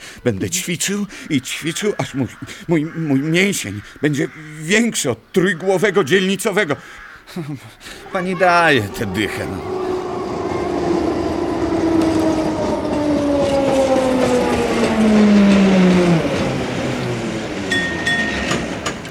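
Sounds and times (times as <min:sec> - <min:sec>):
speech: 0:00.2 - 0:09.7
tram rolling on rails: 0:07.8 - 0:19.0.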